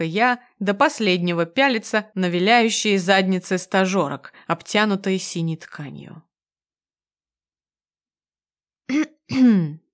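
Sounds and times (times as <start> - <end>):
speech: 0.0 - 6.3, 8.9 - 9.8
single person clearing throat: 8.9 - 9.9.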